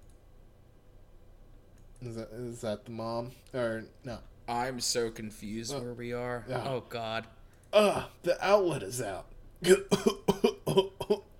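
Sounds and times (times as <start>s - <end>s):
speech: 2.0s - 10.9s
harsh coughs: 9.6s - 11.3s.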